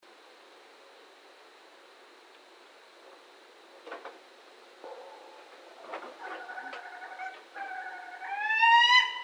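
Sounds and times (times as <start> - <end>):
Barred owl hooting and wailing: 6.2 - 9.2.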